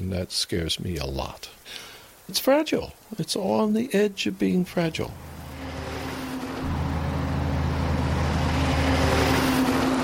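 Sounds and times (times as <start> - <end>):
speech: 0.1 - 5.3
heavy logging truck engine rumbling along a road beside a river: 5.0 - 10.0.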